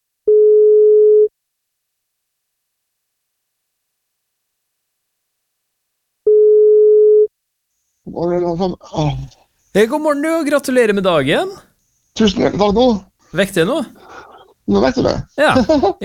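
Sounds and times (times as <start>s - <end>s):
electronic telephone ringback tones while placing a call: 0.3s - 1.3s, 6.3s - 7.3s
speech: 8.2s - 16.0s
person answering the phone: 9.8s - 11.6s.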